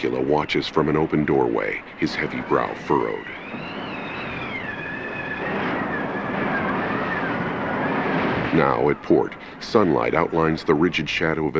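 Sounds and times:
speech: 0.0 - 3.8, 8.6 - 11.5
waves crashing over a schooner's deck: 0.0 - 11.5
thin wavering whistle: 2.0 - 10.6.

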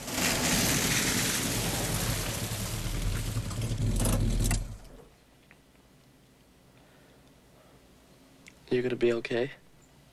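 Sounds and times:
car engine humming while driving along a rain-soaked street: 0.0 - 5.1
wet car tires hissing on a rain-soaked street: 0.0 - 5.1
speech: 8.7 - 9.6.

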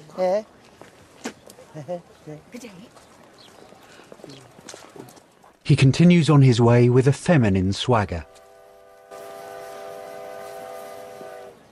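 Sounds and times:
speech: 0.2 - 0.6, 1.8 - 3.1, 4.2 - 8.4
long steady train horn blast: 8.2 - 11.7.

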